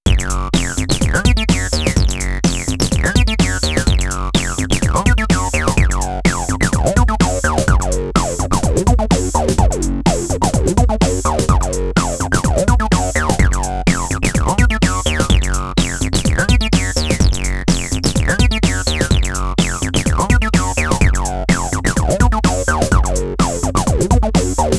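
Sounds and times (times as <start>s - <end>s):
acid bass synthesizer pattern: 0.0s - 24.7s.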